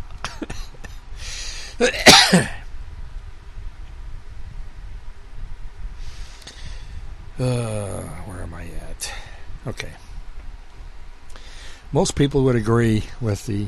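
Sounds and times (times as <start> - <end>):
person coughing after choking on a drink: 0.2 - 0.9, 1.8 - 2.6
quiet breathing: 1.0 - 1.8, 5.9 - 7.2, 9.0 - 10.2, 11.2 - 12.0
speech: 1.8 - 2.6, 7.4 - 10.1, 11.9 - 13.6.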